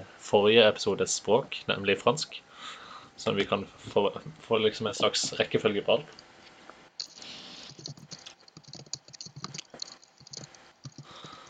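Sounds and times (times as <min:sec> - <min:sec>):
speech: 0:00.3 - 0:06.2
typing on a computer keyboard: 0:07.0 - 0:11.4.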